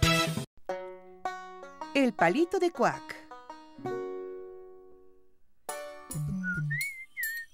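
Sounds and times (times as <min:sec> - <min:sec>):
speech: 0:02.0 - 0:03.1
person whistling while walking: 0:06.2 - 0:07.5.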